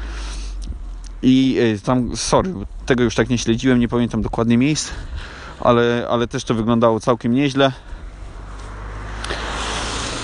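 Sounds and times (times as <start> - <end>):
speech: 1.2 - 8.0
car passing by outside with whooshing road noise: 7.8 - 10.2.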